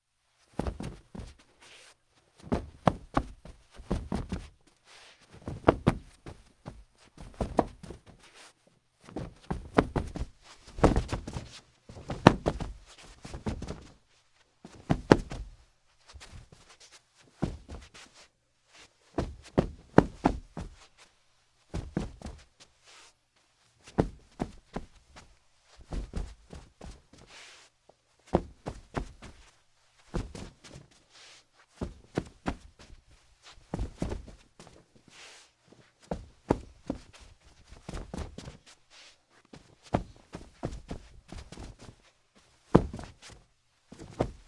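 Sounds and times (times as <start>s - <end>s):
body tumbling after a trip: 0.5s - 1.4s, 2.4s - 4.6s, 5.3s - 8.3s, 9.0s - 14.0s, 14.7s - 16.7s, 17.3s - 18.0s, 19.1s - 21.0s, 21.7s - 22.5s, 23.8s - 27.3s, 28.3s - 30.9s, 31.8s - 35.0s, 35.8s - 38.7s, 39.5s - 42.0s, 42.6s - 44.4s
bare feet footsteps on carpet staggering drunk: 0.5s - 23.2s, 23.8s - 44.4s.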